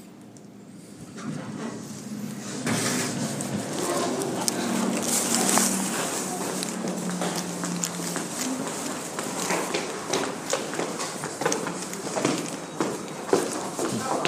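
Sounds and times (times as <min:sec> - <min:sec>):
elevator in a building in Sydney, steady mechanical hum: 0:00.0 - 0:14.2
elevator doors sliding in a building in Sydney: 0:01.1 - 0:07.6.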